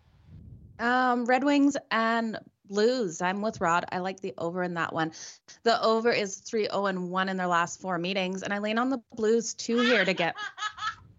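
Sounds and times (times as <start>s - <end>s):
speech: 0.8s - 11.0s
phone text alert playing a recorded childlike giggle: 9.8s - 11.0s.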